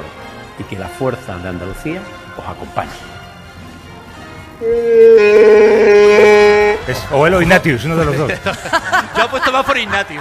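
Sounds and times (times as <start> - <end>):
speech: 0.6 - 3.2, 4.6 - 6.0, 6.9 - 10.1
loud sustained roar with a tonal moaning quality: 4.6 - 7.0
laughter: 7.9 - 10.1.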